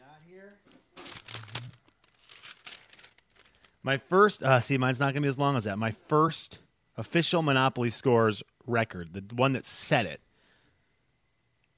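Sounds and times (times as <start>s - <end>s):
piece of paper being handled, crinkling and rustling: 0.6s - 3.8s
speech: 3.8s - 10.2s.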